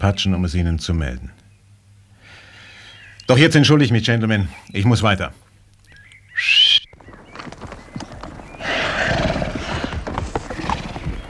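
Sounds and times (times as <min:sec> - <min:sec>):
speech: 0:00.0 - 0:01.4, 0:03.3 - 0:05.4, 0:06.4 - 0:06.7
horse whinnying: 0:06.4 - 0:11.2
horse hooves clopping: 0:06.9 - 0:11.2.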